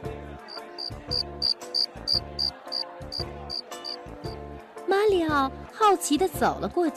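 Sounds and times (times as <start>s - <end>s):
rhythmic music: 0.0s - 6.9s
cricket chirping: 0.6s - 2.8s
speech: 5.1s - 6.9s.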